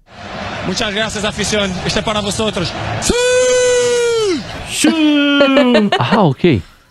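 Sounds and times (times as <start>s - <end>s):
stadium crowd shouting in unison: 0.0s - 5.2s
laughter: 0.4s - 6.6s
speech: 0.7s - 6.7s.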